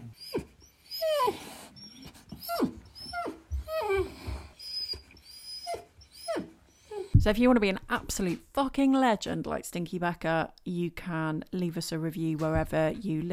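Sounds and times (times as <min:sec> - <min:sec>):
dog whimpering and yelping: 0:00.0 - 0:07.2
speech: 0:07.2 - 0:13.3.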